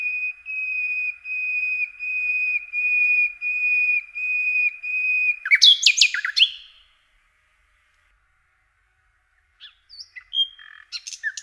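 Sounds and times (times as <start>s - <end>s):
common nightingale singing: 0.0s - 7.0s, 9.4s - 11.4s.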